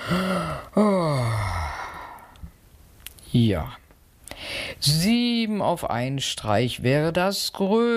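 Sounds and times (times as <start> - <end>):
human voice performing a drawn-out voiced yawn: 0.0 - 2.5
speech: 0.1 - 1.6, 3.3 - 3.8, 4.8 - 7.9.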